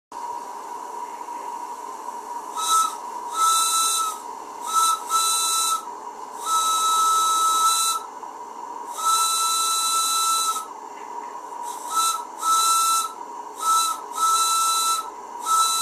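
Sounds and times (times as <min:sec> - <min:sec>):
large 8mm model-making whistle: 0:02.5 - 0:08.1, 0:08.9 - 0:10.7, 0:11.7 - 0:15.8.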